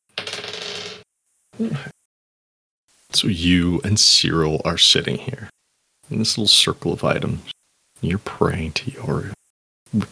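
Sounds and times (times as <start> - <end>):
die clattering and rattling across a hard tabletop: 0.1 - 1.0
speech: 1.6 - 2.0, 3.1 - 10.0.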